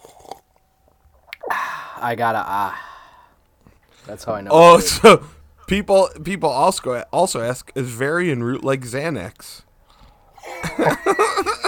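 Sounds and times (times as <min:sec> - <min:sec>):
person sipping and swallowing a drink: 0:00.0 - 0:01.8
moist mouth sound: 0:01.1 - 0:01.6
speech: 0:02.0 - 0:02.8, 0:04.0 - 0:09.7, 0:10.7 - 0:11.5
laughter: 0:10.4 - 0:11.6.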